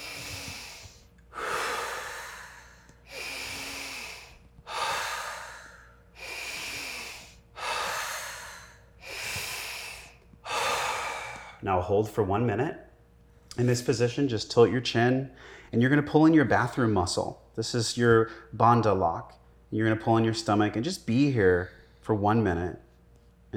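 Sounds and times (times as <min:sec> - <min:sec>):
slow deliberate paced breathing: 0:00.0 - 0:11.6
speech: 0:11.6 - 0:12.9, 0:13.6 - 0:22.8.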